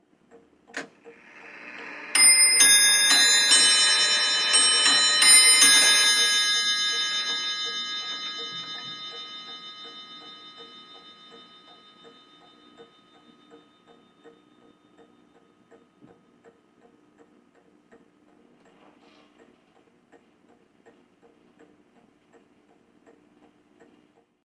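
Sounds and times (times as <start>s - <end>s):
old mantel clock striking: 1.1s - 15.3s.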